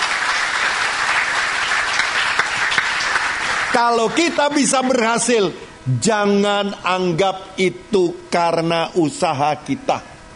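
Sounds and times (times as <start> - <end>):
audience applauding: 0.0 - 4.8
speech: 3.8 - 10.1.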